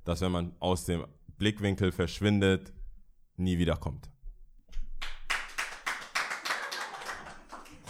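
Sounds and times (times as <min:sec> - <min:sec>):
speech: 0:00.0 - 0:02.8, 0:03.4 - 0:04.1
hands clapping: 0:05.0 - 0:07.8.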